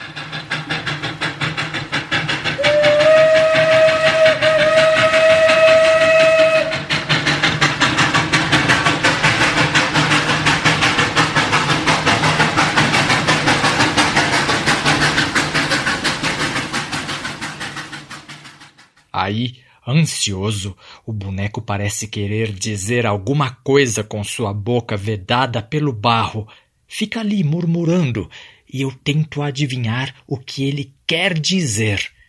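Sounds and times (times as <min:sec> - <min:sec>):
train wheels clattering over rail joints: 0:00.0 - 0:19.1
long steady train whistle: 0:02.6 - 0:06.9
speech: 0:19.3 - 0:32.1.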